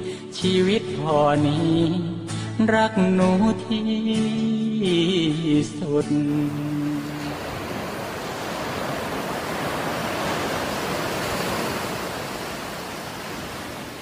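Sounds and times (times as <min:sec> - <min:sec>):
speech: 0:00.4 - 0:06.7
ocean waves washing onto a beach: 0:06.2 - 0:14.0.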